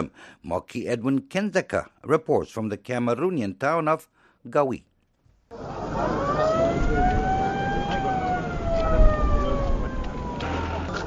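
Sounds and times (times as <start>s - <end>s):
speech: 0.0s - 4.9s
ambulance siren wailing in Ngawi Cameroon: 5.5s - 11.0s
crowd and street noise in Ngawi Cameroon: 5.5s - 11.0s.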